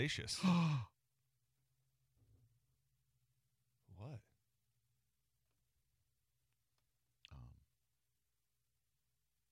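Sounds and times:
speech: 0.0 - 0.9
person gasping: 0.4 - 0.9.

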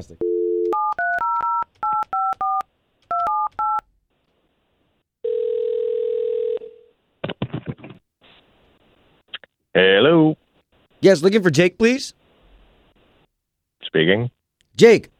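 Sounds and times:
speech: 0.0 - 0.3, 9.8 - 10.4, 11.0 - 12.2, 13.9 - 15.1
telephone ringing tone: 0.2 - 3.8, 5.2 - 6.9
telephone touch-tone dialing beeps: 0.2 - 3.8.

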